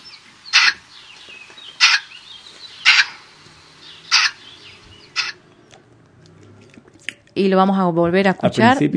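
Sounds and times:
bird calling: 0:00.0 - 0:05.9
speech: 0:07.4 - 0:08.9.

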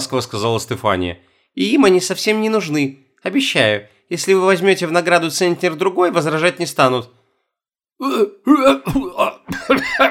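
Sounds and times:
speech: 0:00.0 - 0:07.2, 0:08.0 - 0:10.0
voice imitating a startled man's coughing: 0:08.0 - 0:10.0.

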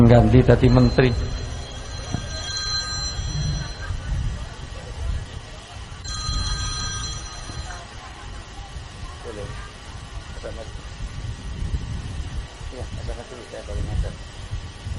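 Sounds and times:
speech: 0:00.0 - 0:01.4
telephone ringing with trilling bell tone: 0:00.2 - 0:04.4, 0:06.0 - 0:08.0.

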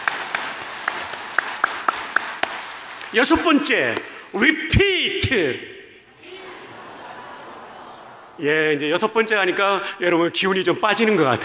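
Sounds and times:
audience applause at a church gathering: 0:00.0 - 0:04.2, 0:06.1 - 0:08.6
speech: 0:03.1 - 0:05.8, 0:08.4 - 0:11.4
laughter: 0:06.0 - 0:09.8.

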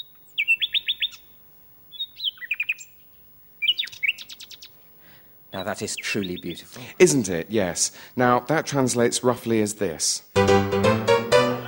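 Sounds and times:
nightingale singing: 0:00.0 - 0:04.9, 0:05.5 - 0:06.8
speech: 0:05.6 - 0:11.1.

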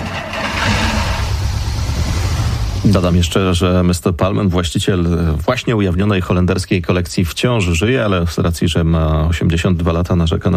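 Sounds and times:
restored classic car engine starting: 0:00.0 - 0:03.8
speech: 0:02.8 - 0:10.5.

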